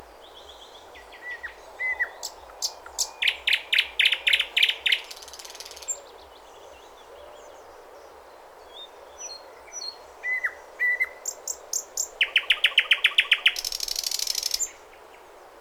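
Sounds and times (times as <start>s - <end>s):
thrush nightingale singing: 0.3s - 6.9s, 9.2s - 14.8s.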